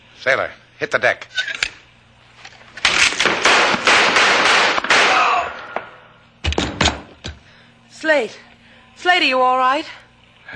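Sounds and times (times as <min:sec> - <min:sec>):
speech: 0:00.2 - 0:01.8, 0:08.0 - 0:10.5
gunfire in a shootout: 0:03.2 - 0:05.5.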